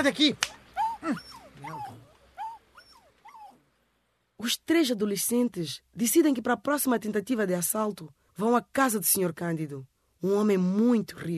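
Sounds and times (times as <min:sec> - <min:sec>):
speech: 0:00.0 - 0:02.0, 0:04.4 - 0:11.3
small dog whimpering and yipping: 0:00.8 - 0:03.6.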